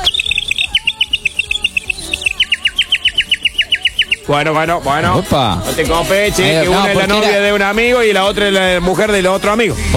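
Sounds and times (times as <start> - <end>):
bird chirping: 0.0 - 4.4
soft warbling bird call: 0.0 - 4.4
speech: 4.3 - 9.9.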